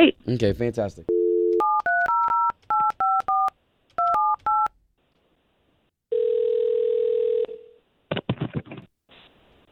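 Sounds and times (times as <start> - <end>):
speech: 0.0 - 1.1
steady telephone dial tone: 1.1 - 2.2, 6.1 - 7.7
telephone ringing: 1.1 - 4.7, 6.1 - 7.7.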